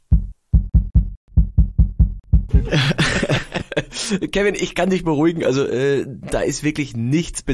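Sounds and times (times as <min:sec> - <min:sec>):
heartbeat picked up at the neck: 0:00.0 - 0:03.2
laughter: 0:02.5 - 0:04.2
speech: 0:02.7 - 0:03.1, 0:04.1 - 0:07.5.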